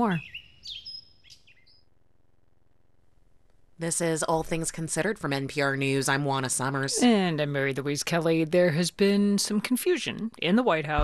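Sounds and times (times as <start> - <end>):
speech: 0.0 - 0.8, 3.8 - 11.0
birdsong chirps: 0.0 - 1.9.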